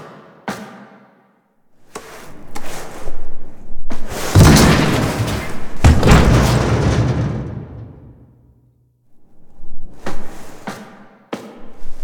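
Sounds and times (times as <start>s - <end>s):
barricade being destroyed foley: 4.2s - 8.3s.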